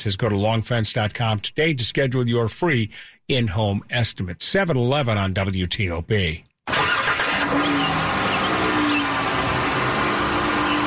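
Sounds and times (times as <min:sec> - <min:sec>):
speech: 0:00.0 - 0:06.9
car engine revving: 0:06.7 - 0:10.8.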